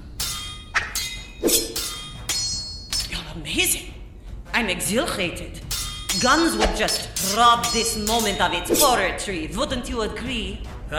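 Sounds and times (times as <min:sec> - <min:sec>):
swords clashing in a duel: 0:00.0 - 0:03.2, 0:05.6 - 0:09.1
speech: 0:03.4 - 0:03.9, 0:04.6 - 0:10.9.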